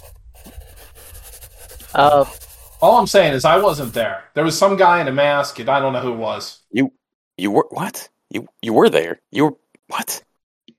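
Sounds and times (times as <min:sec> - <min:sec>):
pen or marker scribbling on a giant pad of paper: 0:00.0 - 0:04.0
speech: 0:01.9 - 0:10.3.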